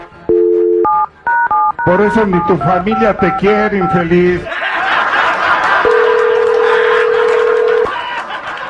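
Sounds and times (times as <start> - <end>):
busy noisy background: 0.0 - 7.9
steady telephone tone as a call is dialed to a police department: 0.3 - 4.2, 5.8 - 7.9
speech: 1.8 - 4.5
laughter: 2.2 - 8.6.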